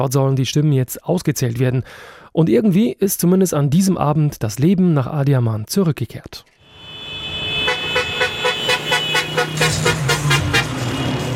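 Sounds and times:
speech: 0:00.0 - 0:06.6
street traffic of mopeds and cars rumbling: 0:06.6 - 0:11.3
vehicle horn honking in short repeated toots: 0:06.6 - 0:11.3.

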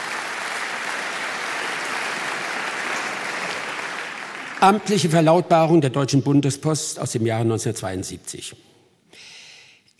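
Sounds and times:
audience applause: 0:00.0 - 0:05.2
speech: 0:04.6 - 0:08.8.

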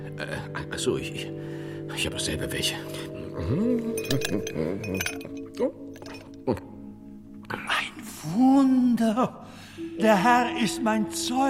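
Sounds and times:
speech: 0:00.0 - 0:05.8, 0:06.4 - 0:06.7, 0:08.2 - 0:11.4
small ice cubes clinking into a glass: 0:04.0 - 0:06.3.

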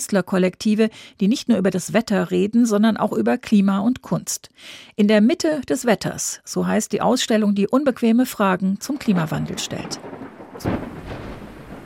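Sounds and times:
speech: 0:00.0 - 0:11.2
steady rain falling: 0:08.8 - 0:11.8
thunder cracking and rolling into a low rumble: 0:08.8 - 0:11.8.

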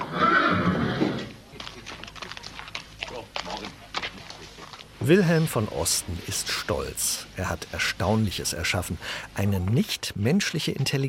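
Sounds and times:
horse giving a loud drawn-out whinny: 0:00.0 - 0:01.3
horse hooves clip-clopping: 0:01.0 - 0:08.4
speech: 0:05.1 - 0:11.0.

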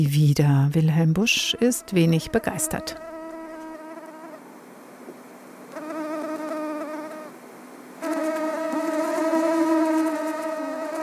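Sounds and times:
speech: 0:00.0 - 0:03.1
mosquito whining in flight: 0:01.4 - 0:04.4, 0:05.7 - 0:07.4, 0:08.0 - 0:11.0.

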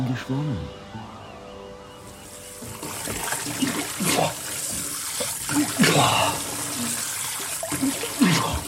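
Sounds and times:
speech: 0:00.2 - 0:00.8, 0:02.6 - 0:04.8, 0:05.5 - 0:07.0, 0:07.8 - 0:08.6
water running from a tap or shower onto a bathing man: 0:02.2 - 0:08.6.

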